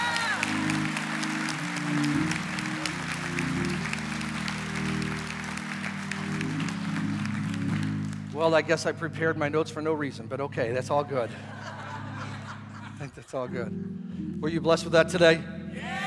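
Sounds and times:
large crowd applauding: 0:00.0 - 0:08.6
organ or keyboard chords: 0:00.0 - 0:16.0
speech: 0:08.4 - 0:11.8, 0:13.0 - 0:16.0
laughter: 0:11.1 - 0:13.4.

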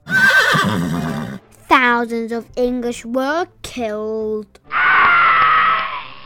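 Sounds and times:
horse neighing stuck in the mud: 0:00.0 - 0:01.4, 0:04.7 - 0:06.2
speech: 0:02.0 - 0:04.8.

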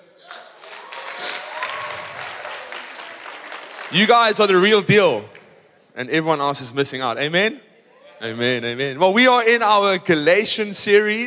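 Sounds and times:
room full of people applauding: 0:00.0 - 0:05.6
speech: 0:03.9 - 0:05.3, 0:06.0 - 0:11.2.

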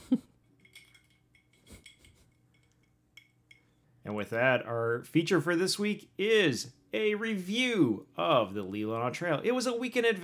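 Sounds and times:
ice cubes dropped into a glass: 0:00.6 - 0:03.8
speech: 0:04.1 - 0:10.2.

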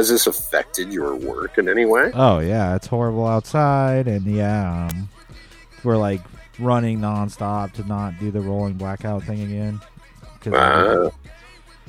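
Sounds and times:
speech: 0:00.0 - 0:11.4
loud drawn-out burp: 0:10.5 - 0:11.1.

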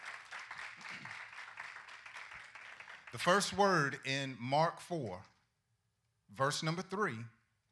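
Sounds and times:
audience applause: 0:00.0 - 0:03.6
speech: 0:03.1 - 0:05.3, 0:06.3 - 0:07.4.

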